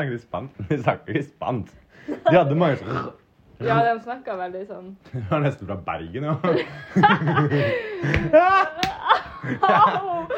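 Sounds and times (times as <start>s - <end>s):
speech: 0.0s - 10.3s
giggling, snickering laughter: 6.4s - 10.3s
sharp slap to the face: 8.1s - 9.1s.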